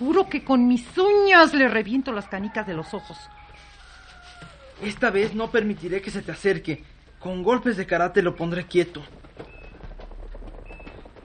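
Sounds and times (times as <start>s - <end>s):
speech: 0.0s - 3.4s, 4.8s - 9.5s
horses galloping: 0.0s - 11.2s
rough noisy background: 0.0s - 11.2s.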